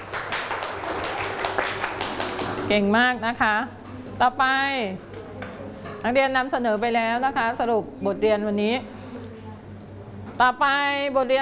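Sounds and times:
students in a class clapping for a classmate: 0.0 - 2.8
speech: 2.7 - 5.1, 6.0 - 9.0, 10.4 - 11.4.

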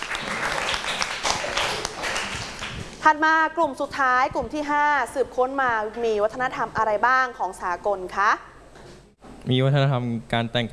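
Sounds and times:
class clapping for a group of students: 0.0 - 3.0
speech: 3.1 - 8.5, 9.4 - 10.7.

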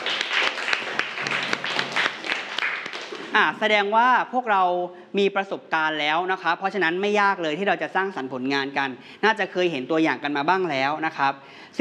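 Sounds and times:
group of people clapping hands: 0.0 - 3.5
speech: 3.4 - 11.7.

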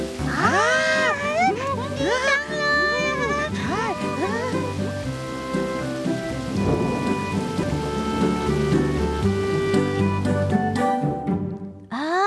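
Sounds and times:
steady rain pouring down: 0.0 - 11.7
cheerful music: 0.0 - 11.9
voices: 0.3 - 4.8.

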